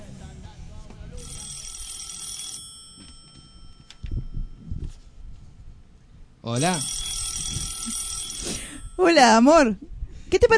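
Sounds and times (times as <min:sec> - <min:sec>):
telephone ringing as a call is placed: 0:01.1 - 0:05.1, 0:06.5 - 0:09.6
speech: 0:06.5 - 0:07.0, 0:09.0 - 0:10.5.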